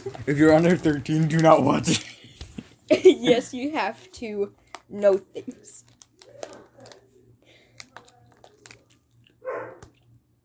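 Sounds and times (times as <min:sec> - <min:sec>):
speech: 0:00.2 - 0:02.2, 0:02.9 - 0:05.8
female dog barking faintly: 0:09.4 - 0:09.8.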